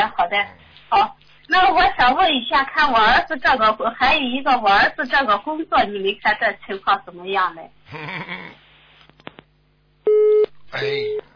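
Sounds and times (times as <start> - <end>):
speech: 0.2 - 8.6, 10.7 - 11.3
telephone busy tone after a dropped call: 10.1 - 11.2.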